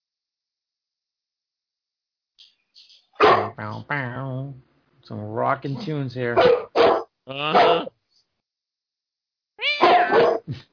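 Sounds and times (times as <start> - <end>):
speech: 3.6 - 6.6, 7.3 - 7.9
cat meowing: 9.6 - 10.4.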